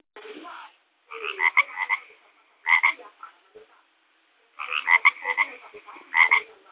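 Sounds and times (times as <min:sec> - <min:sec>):
frog rasping pulsed croaks: 0:01.1 - 0:03.0, 0:04.6 - 0:06.5.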